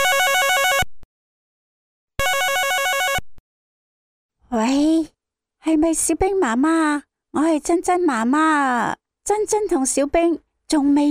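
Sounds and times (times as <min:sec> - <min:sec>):
electronic phone ringback tone during an outgoing call: 0:00.0 - 0:00.9, 0:02.2 - 0:03.3
speech: 0:05.7 - 0:11.0.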